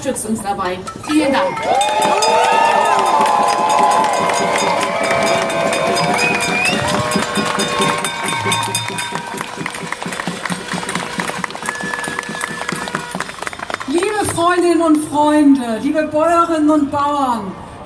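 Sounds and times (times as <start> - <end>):
speech: 0.0 - 9.0, 14.4 - 17.6
large outdoor protest crowd cheering and shouting in the street: 1.4 - 13.4
whistles in a protest crowd: 6.1 - 7.1.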